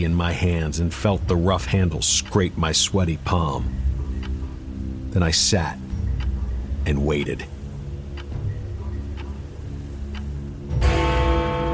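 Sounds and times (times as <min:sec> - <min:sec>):
speech: 0:00.0 - 0:03.9, 0:05.2 - 0:05.8, 0:06.8 - 0:07.6
clock ticking: 0:00.0 - 0:11.7
gong-like clock chime striking the hour: 0:03.2 - 0:11.7.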